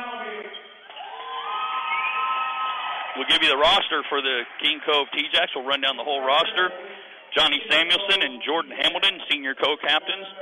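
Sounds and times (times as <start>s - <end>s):
crowd cheering and shouting: 0.8s - 5.7s
two teams clapping before lineups: 1.9s - 5.6s
speech: 3.2s - 10.4s.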